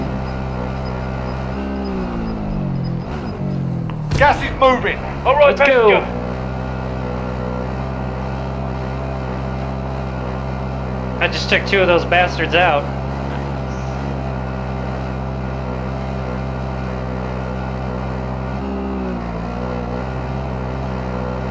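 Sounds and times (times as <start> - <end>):
video game car engine driving: 0.0 - 21.5
speech: 4.2 - 6.2, 11.3 - 13.0.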